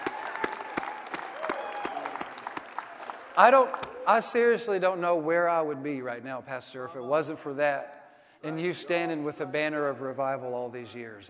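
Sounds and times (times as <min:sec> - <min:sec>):
audience applauding: 0:00.0 - 0:04.0
speech: 0:03.4 - 0:11.2.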